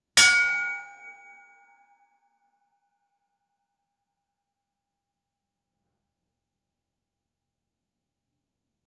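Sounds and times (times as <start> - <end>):
echoing metal pipe being struck: 0.2 - 1.7.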